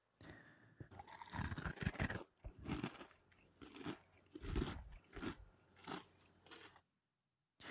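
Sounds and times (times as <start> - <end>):
boy chewing crisp cereal: 0.8 - 6.9.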